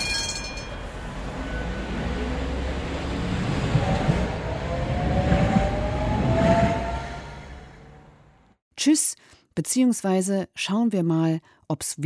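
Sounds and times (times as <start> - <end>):
Tatra tram rumbling on rails in Berlin: 0.0 - 8.6
speech: 8.8 - 12.0.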